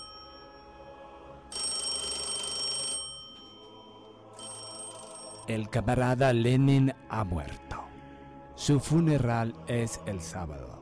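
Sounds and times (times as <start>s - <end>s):
telephone ringing in bright trilling bursts: 0.0s - 0.8s, 1.5s - 5.5s
speech: 5.5s - 7.6s, 8.6s - 10.8s.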